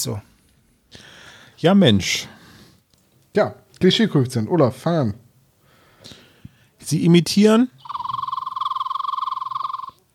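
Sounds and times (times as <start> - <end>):
speech: 0.0 - 0.3, 1.6 - 2.4, 3.4 - 5.2, 6.9 - 7.8
red-bellied flycatcher call: 7.8 - 10.0.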